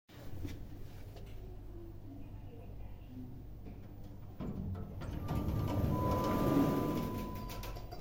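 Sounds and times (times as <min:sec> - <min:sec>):
elevator: 0:04.0 - 0:07.9.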